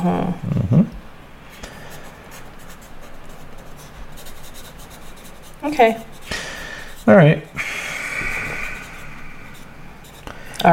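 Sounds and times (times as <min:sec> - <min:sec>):
speech: 0:00.0 - 0:00.9, 0:05.6 - 0:06.1, 0:07.1 - 0:07.6
pen scratching on paper: 0:01.8 - 0:07.6, 0:08.2 - 0:10.4.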